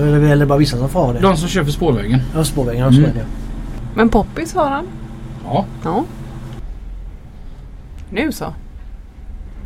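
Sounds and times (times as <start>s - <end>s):
speech: 0.0s - 3.4s, 4.0s - 6.2s, 8.1s - 8.6s
Scania truck engine rumbling while driving away: 0.0s - 7.0s.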